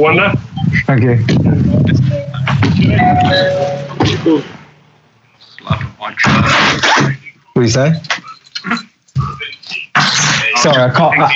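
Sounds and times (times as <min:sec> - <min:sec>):
speech: 0:00.0 - 0:02.1, 0:02.8 - 0:04.6, 0:05.6 - 0:08.8, 0:10.6 - 0:11.3
low rumble: 0:00.4 - 0:05.3
electronic doorbell chime: 0:02.2 - 0:04.2.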